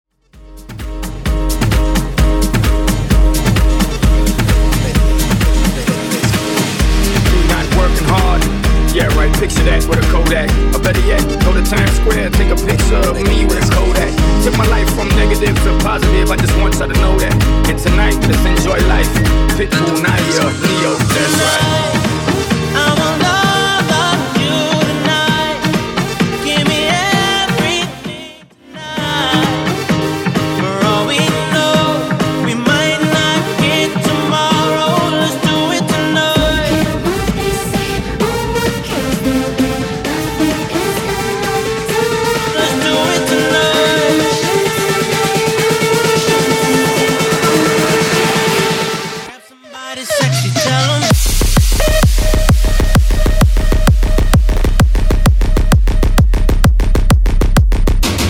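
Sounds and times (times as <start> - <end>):
bootleg house music mashup: 0.1 - 58.2.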